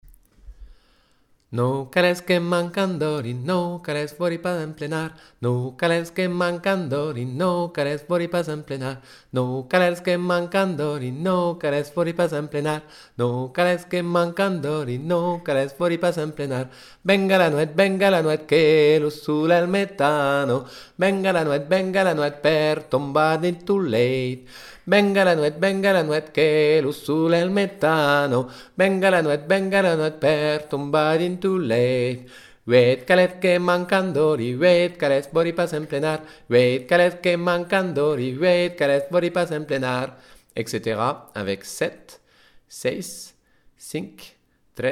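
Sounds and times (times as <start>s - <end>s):
lead vocal: 0.5s - 44.9s.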